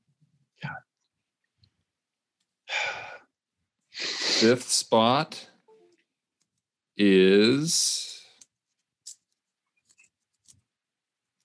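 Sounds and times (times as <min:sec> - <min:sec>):
speech: 0:04.4 - 0:05.5, 0:07.0 - 0:08.0
crumpled paper slip crinkling and rustling as it is unfolded: 0:08.5 - 0:11.4.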